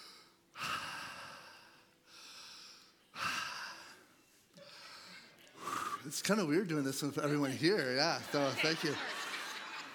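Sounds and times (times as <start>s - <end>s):
deep breathing during a chest exam: 0.0s - 6.1s
speech: 6.0s - 9.2s
laughter: 7.2s - 9.9s.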